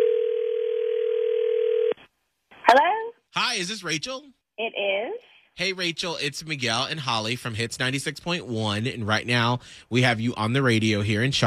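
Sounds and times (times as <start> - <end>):
telephone dial tone while calling: 0.0 - 2.0
speech: 2.7 - 11.4.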